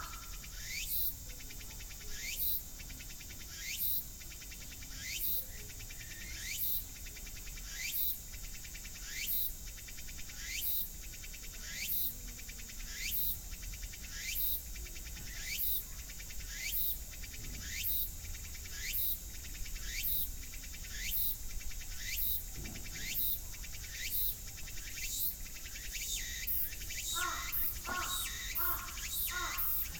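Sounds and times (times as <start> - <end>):
cicadas: 0.0 - 29.9.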